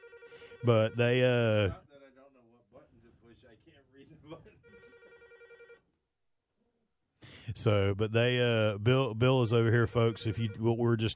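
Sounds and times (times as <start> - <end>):
telephone ringing with a buzzing electronic trill: 0.0 - 1.3, 4.6 - 5.9, 9.9 - 10.7
speech: 0.6 - 1.9, 7.5 - 11.1.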